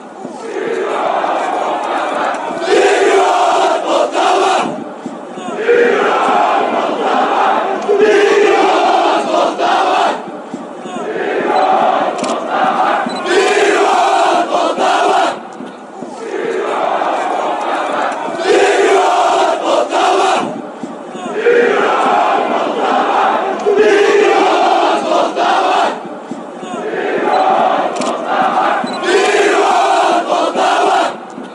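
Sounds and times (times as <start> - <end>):
people chanting in Ukraine: 0.0 - 31.5.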